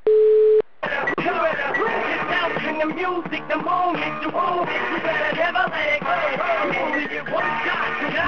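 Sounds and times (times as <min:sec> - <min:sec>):
phone call ringback beep: 0:00.1 - 0:00.6
rap song playing as phone ringback tone: 0:00.8 - 0:08.2.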